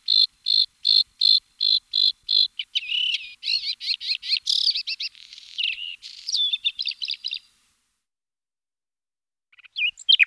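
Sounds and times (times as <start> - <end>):
bluethroat singing: 0.1 - 7.5.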